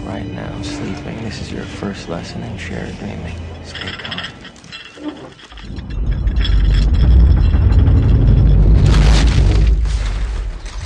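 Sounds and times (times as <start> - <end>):
speech: 0.1 - 4.4
brighter crackling debris bursting: 5.8 - 10.8
film sound effect of a dream city exploding in puffs of debris: 5.9 - 10.4.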